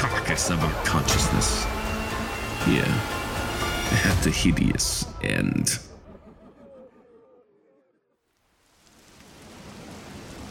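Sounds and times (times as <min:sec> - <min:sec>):
speech: 0:00.4 - 0:01.8, 0:02.6 - 0:03.2, 0:03.9 - 0:05.9
heavy rain pouring onto a cobblestone street: 0:08.6 - 0:10.4.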